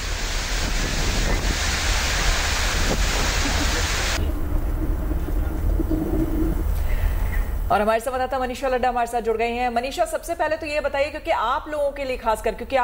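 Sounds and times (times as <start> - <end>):
heavy rain in Delhi: 0.0 - 7.7
strong gusting wind in Delhi: 0.0 - 7.8
speech: 7.7 - 12.8.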